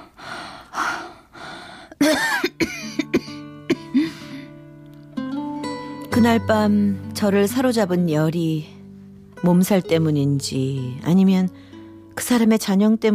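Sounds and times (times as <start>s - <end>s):
strained breaths: 0.0s - 2.0s
person coughing harshly: 2.0s - 4.2s
soft sustained musical tone: 3.2s - 13.0s
speech: 6.2s - 8.7s, 9.4s - 13.1s.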